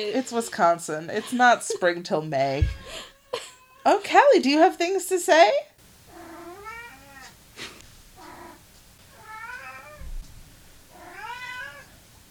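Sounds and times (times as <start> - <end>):
speech: 0.0 - 5.7
cat meowing insistently: 2.7 - 3.9, 6.1 - 7.4, 8.2 - 10.0, 10.9 - 11.9.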